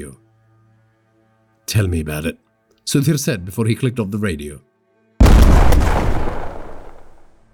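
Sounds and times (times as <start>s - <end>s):
speech: 0.0s - 0.2s, 1.7s - 4.7s
truck bomb explosion: 5.2s - 7.3s.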